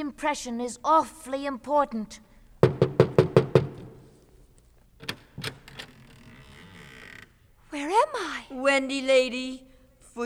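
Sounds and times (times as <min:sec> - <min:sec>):
speech: 0:00.0 - 0:02.8, 0:07.8 - 0:10.2
knocking on a door: 0:02.6 - 0:04.2
soft scattered thumps: 0:02.6 - 0:04.4.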